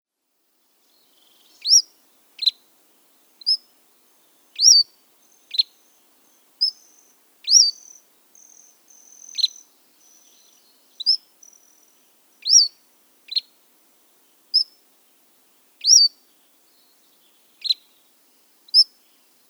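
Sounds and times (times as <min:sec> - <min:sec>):
Cordilleran flycatcher calling: 0:01.1 - 0:02.6, 0:03.4 - 0:13.5, 0:14.5 - 0:14.8, 0:15.8 - 0:17.9.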